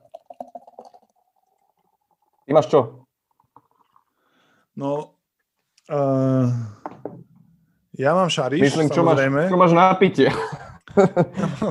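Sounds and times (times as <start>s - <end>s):
beer being poured from a can into a glass: 0.0s - 4.5s
speech: 2.5s - 3.0s, 4.8s - 5.1s, 5.9s - 6.8s, 8.0s - 11.6s
laughter: 10.2s - 11.6s.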